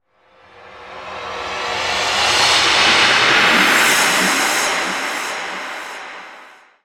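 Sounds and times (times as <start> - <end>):
techno sound effect: 2.2 - 6.6.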